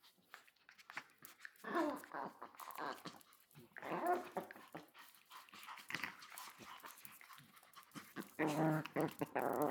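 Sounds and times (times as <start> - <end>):
Chihuahua growling in play: 1.6 - 4.9, 8.0 - 9.6
speech: 8.4 - 9.6.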